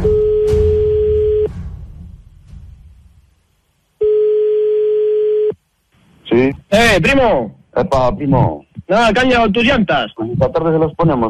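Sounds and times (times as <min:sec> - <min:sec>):
ringing tone of an outgoing telephone call: 0:00.0 - 0:01.5, 0:04.0 - 0:05.6
faint hiss: 0:01.5 - 0:11.2
speech: 0:06.9 - 0:11.2.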